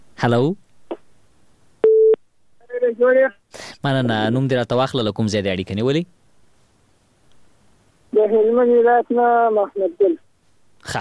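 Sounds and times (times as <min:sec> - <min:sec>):
speech: 0:00.2 - 0:00.6, 0:02.9 - 0:06.2, 0:08.1 - 0:10.2
telephone busy tone after a call was cut off: 0:01.8 - 0:02.2.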